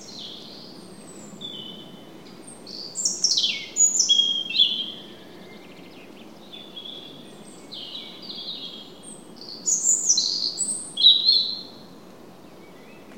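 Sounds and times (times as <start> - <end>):
European robin Erithacus rubecula singing: 0.0 - 11.8
steady low background noise: 0.0 - 13.1.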